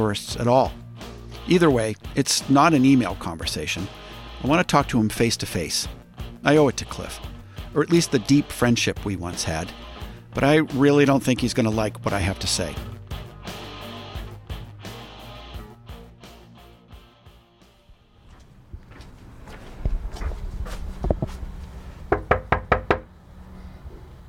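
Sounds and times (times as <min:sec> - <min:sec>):
speech: 0:00.0 - 0:00.8, 0:01.5 - 0:12.9
footsteps: 0:17.9 - 0:22.0
quiet shuffling: 0:18.2 - 0:22.0
firm knocks on a wooden front door: 0:22.1 - 0:23.1.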